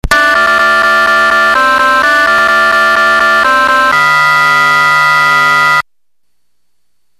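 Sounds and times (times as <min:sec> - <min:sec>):
fanfare: 0:00.1 - 0:05.8.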